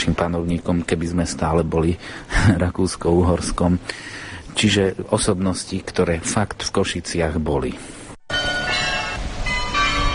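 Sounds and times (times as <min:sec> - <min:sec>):
steady outdoor noise: 0:00.0 - 0:10.1
speech: 0:00.1 - 0:08.0
city carillon playing a melody: 0:08.3 - 0:10.1.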